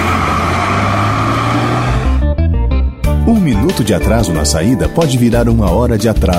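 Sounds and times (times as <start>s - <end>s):
bus engine roaring while pulling away: 0.0s - 2.8s
speech: 3.8s - 6.3s.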